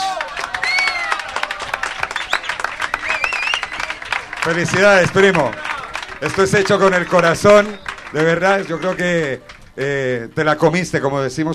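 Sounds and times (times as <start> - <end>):
crowd applauding: 0.0 - 10.6
whoops and whistles: 0.6 - 1.2, 2.0 - 4.0
speech: 4.4 - 11.5.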